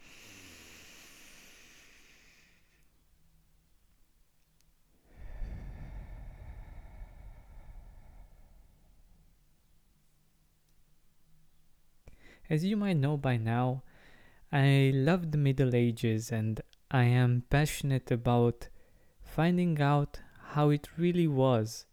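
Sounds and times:
deep breath in through the nose and out through the mouth: 0.0s - 3.0s, 5.0s - 9.5s, 12.1s - 12.5s, 13.9s - 14.5s, 18.8s - 19.2s
speech: 12.5s - 13.9s, 14.5s - 18.7s, 19.3s - 21.9s.

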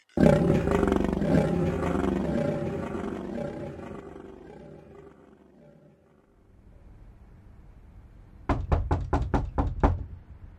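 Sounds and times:
deep roaring: 0.0s - 6.5s
sharp knocks on a door: 8.5s - 10.2s.

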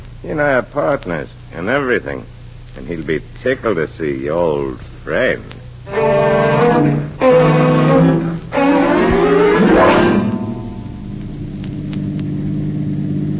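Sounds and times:
speech: 0.2s - 8.3s
car engine revving through gear shifts while driven: 5.9s - 13.3s.

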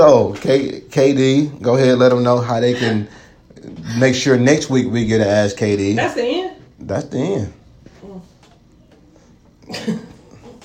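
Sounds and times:
speech: 0.0s - 7.6s, 9.7s - 10.1s
sharp cough: 9.6s - 10.3s.

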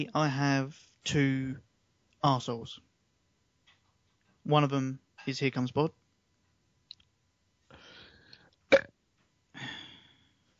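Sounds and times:
speech: 0.0s - 2.9s, 4.4s - 6.0s
person burping: 8.7s - 8.9s.

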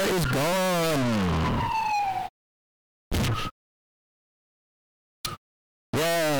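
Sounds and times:
emergency sirens wailing: 0.0s - 2.3s.

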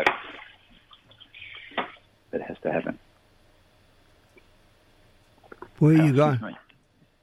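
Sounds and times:
speech: 2.6s - 3.0s, 5.8s - 6.6s
person getting a drink of water: 5.4s - 5.8s.

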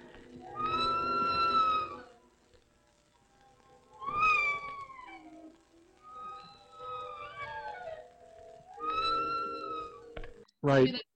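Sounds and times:
creature making drawn-out tonal mewing calls: 0.2s - 2.3s, 3.9s - 10.4s
speech: 10.6s - 11.1s.

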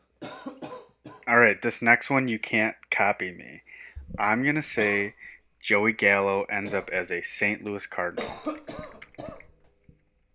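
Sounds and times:
person clearing throat: 0.2s - 1.3s, 8.2s - 9.5s
person coughing: 0.2s - 1.3s, 4.8s - 5.2s, 6.6s - 7.0s, 8.2s - 9.5s
speech: 1.3s - 9.0s.

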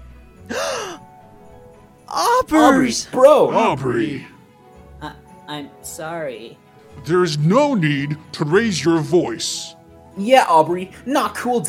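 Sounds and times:
group of people gasping in surprise: 0.5s - 1.1s
speech: 2.4s - 4.3s, 5.0s - 11.6s.

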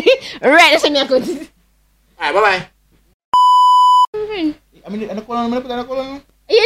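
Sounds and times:
speech: 0.4s - 1.6s, 2.2s - 2.7s, 4.4s - 6.6s
censor bleep tone: 3.4s - 4.1s.

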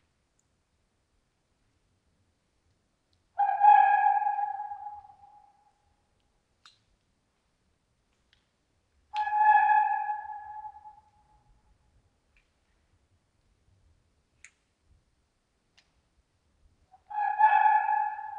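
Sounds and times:
red fox calling at night: 3.4s - 5.7s, 9.1s - 11.2s, 16.9s - 18.3s.

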